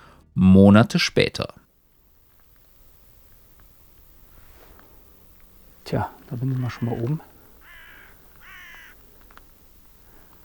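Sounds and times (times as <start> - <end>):
speech: 0.4 - 1.6, 5.9 - 7.3
raven cawing outdoors in barren open country: 2.1 - 10.4.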